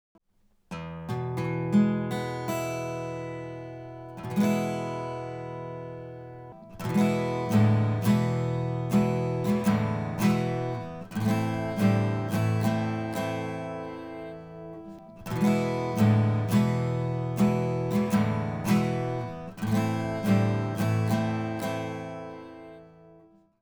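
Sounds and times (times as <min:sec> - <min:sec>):
acoustic music: 0:00.7 - 0:23.4.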